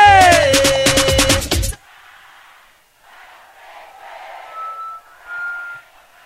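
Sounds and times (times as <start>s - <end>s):
loud music: 0.0s - 1.8s
football fans chanting and cheering in a stadium: 1.7s - 6.2s
sharp whistles: 3.8s - 6.2s.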